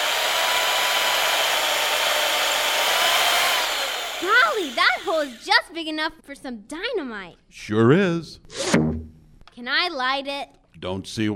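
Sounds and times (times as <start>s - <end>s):
power drill boring into a hard sugar block: 0.0s - 5.7s
speech: 4.8s - 8.9s, 9.6s - 11.3s.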